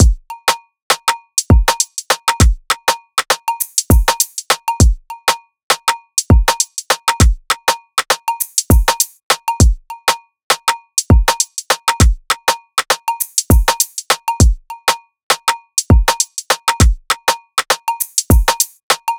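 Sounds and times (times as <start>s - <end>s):
layered Afro drum loop in A minor: 0.0s - 0.3s, 0.9s - 5.0s, 5.7s - 9.8s, 10.5s - 14.6s, 15.3s - 19.1s.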